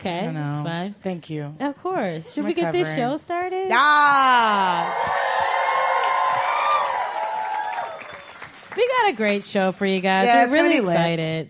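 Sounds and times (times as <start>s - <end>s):
speech: 0.0s - 5.3s, 8.8s - 11.4s
audience whooping and shouting at a live comedy show: 3.7s - 8.6s
audience clapping at a live comedy show: 4.4s - 9.5s.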